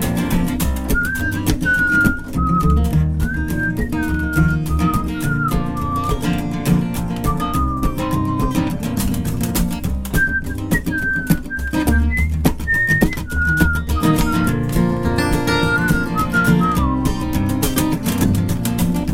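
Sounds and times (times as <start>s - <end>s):
steady full backing music: 0.0s - 19.1s
person whistling a melody: 0.9s - 6.6s, 7.2s - 8.8s, 10.1s - 17.9s.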